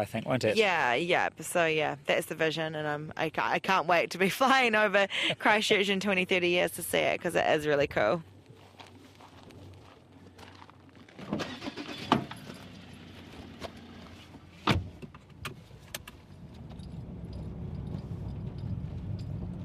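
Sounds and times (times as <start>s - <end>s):
speech: 0.0s - 8.3s
car driving along country roads between farms near Christchurch: 8.0s - 19.6s
clicks and rattles inside the vehicle: 14.6s - 19.6s.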